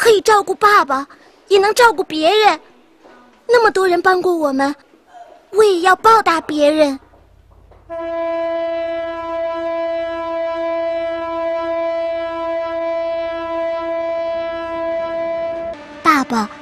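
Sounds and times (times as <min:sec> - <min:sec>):
speech: 0:00.2 - 0:02.7, 0:03.5 - 0:04.9, 0:05.5 - 0:07.0, 0:07.9 - 0:09.0, 0:16.3 - 0:16.5
low rumble of the moving train: 0:06.2 - 0:16.5
train horn blasting: 0:07.8 - 0:16.5.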